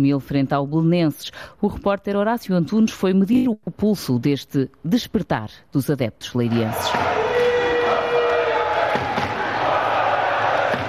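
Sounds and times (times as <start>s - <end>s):
speech: 0.0s - 7.2s
dense crowd of football fans chanting in a stadium fan zone in Leiria: 6.7s - 10.8s.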